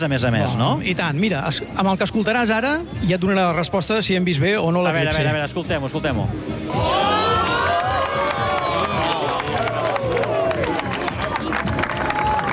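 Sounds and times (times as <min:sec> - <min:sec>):
speech: 0:00.0 - 0:07.2
crowd of about 300 people applauding at an observatory: 0:06.7 - 0:12.5.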